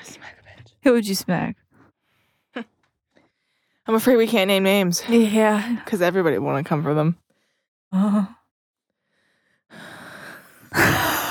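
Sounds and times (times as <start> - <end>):
speech: 0.8 - 1.6, 3.9 - 7.2, 7.9 - 8.4
person doing deliberately creepy breathing: 9.1 - 11.2.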